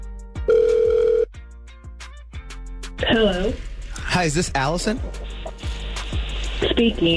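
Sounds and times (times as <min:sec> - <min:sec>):
phone line ringing with a loud steady buzzing tone: 0:00.4 - 0:01.3
speech: 0:03.0 - 0:05.4, 0:06.6 - 0:07.1.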